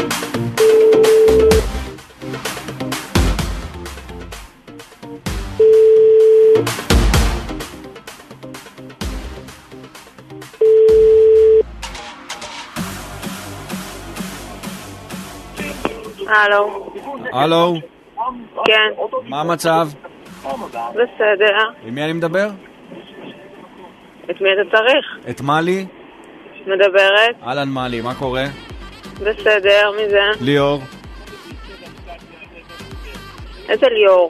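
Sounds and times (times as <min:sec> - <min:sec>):
busy music: 0:00.0 - 0:17.8, 0:19.3 - 0:22.5, 0:27.4 - 0:34.2
outgoing phone call ringing tone: 0:00.6 - 0:01.6, 0:05.6 - 0:06.7, 0:10.6 - 0:11.6
speech: 0:16.4 - 0:22.7, 0:24.3 - 0:26.0, 0:26.6 - 0:31.0, 0:33.7 - 0:34.2.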